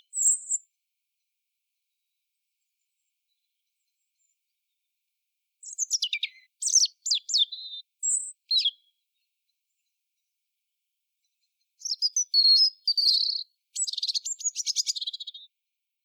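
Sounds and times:
European robin Erithacus rubecula song: 0.0s - 0.7s, 5.6s - 9.3s, 11.4s - 15.6s.

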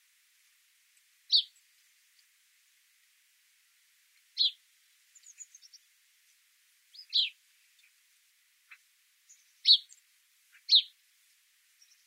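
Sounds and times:
house sparrow Passer domesticus chirping: 1.3s - 1.6s, 4.4s - 4.6s, 5.2s - 5.8s, 6.9s - 7.9s, 8.7s - 11.0s.

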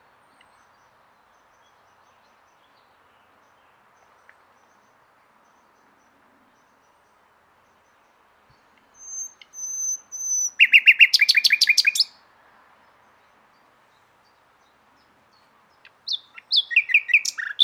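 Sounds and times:
common nightingale Luscinia megarhynchos song: 0.0s - 17.6s.

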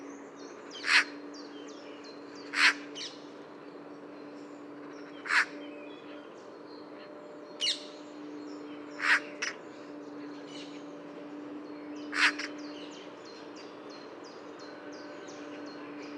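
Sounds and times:
low hum: 0.0s - 16.1s
Eurasian magpie Pica pica giving short harsh rasping calls: 0.8s - 1.1s, 2.5s - 3.1s, 5.2s - 5.5s, 9.0s - 9.5s, 12.1s - 12.5s.

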